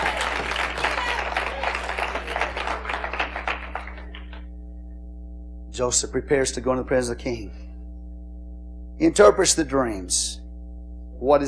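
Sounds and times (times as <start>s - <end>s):
audience clapping hands in praise: 0.0s - 4.4s
low steady hum: 0.0s - 11.4s
speech: 5.8s - 7.6s, 9.0s - 10.4s, 11.2s - 11.4s.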